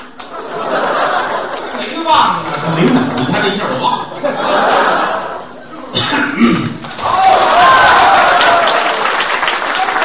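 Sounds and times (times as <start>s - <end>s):
large audience applauding: 0.2s - 3.9s, 6.8s - 10.0s
laughter: 0.2s - 6.0s
speech: 2.1s - 4.0s.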